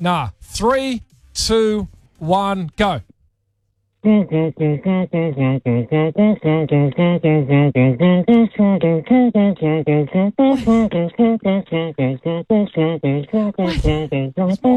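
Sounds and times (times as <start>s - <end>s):
speech: 0.0s - 3.1s, 4.0s - 14.7s
person humming a song: 4.0s - 14.7s
single voice beatboxing: 4.0s - 14.7s.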